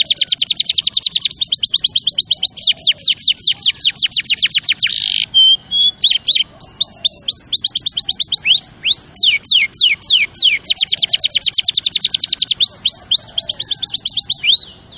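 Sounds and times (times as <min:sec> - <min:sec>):
champion canary singing: 0:00.0 - 0:14.9.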